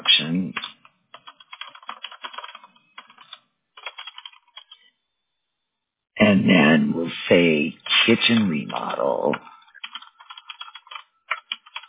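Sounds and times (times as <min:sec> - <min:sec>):
rapid typing on a computer keyboard while entering text: 0:00.5 - 0:04.9, 0:09.6 - 0:11.8
speech: 0:06.3 - 0:09.6.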